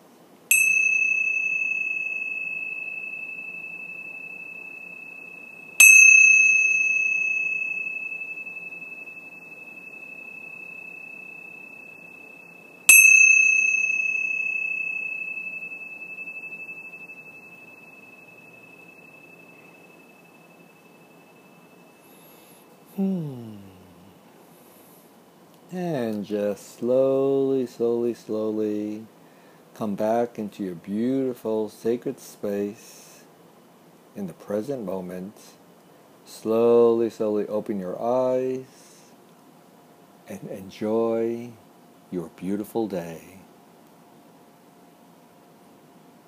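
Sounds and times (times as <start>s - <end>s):
bell struck with a clear sustained tone: 0.5s - 23.2s
speech: 23.0s - 23.4s, 25.7s - 29.1s, 29.8s - 33.0s, 34.2s - 35.6s, 36.3s - 38.8s, 40.3s - 43.4s.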